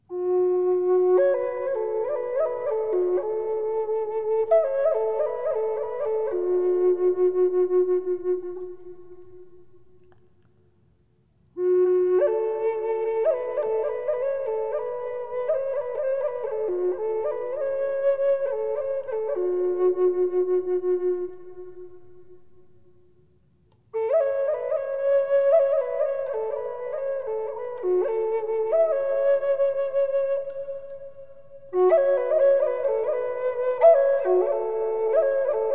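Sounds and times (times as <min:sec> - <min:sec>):
Native American flute playing: 0:00.0 - 0:10.0, 0:11.6 - 0:22.9, 0:24.0 - 0:35.7.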